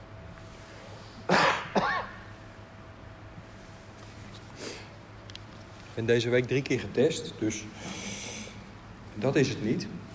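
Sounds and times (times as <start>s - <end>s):
low steady hum: 0.0s - 10.1s
coughs close to the microphone: 1.3s - 2.2s
speech: 6.0s - 8.1s, 9.2s - 10.0s.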